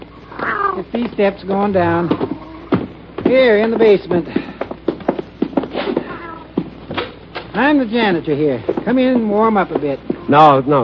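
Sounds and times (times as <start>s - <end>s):
black cat meowing in a basement: 0.2s - 0.9s, 2.1s - 2.8s, 6.0s - 6.6s, 9.4s - 10.5s
speech: 0.8s - 2.3s, 3.3s - 4.5s, 7.6s - 10.8s.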